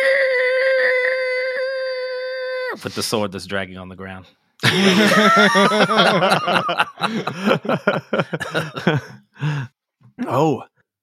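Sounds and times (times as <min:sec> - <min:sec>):
player vocally imitating a loud high-pitched scream: 0:00.0 - 0:02.8
speech: 0:02.8 - 0:09.5, 0:10.3 - 0:10.7
laughter: 0:04.6 - 0:09.6.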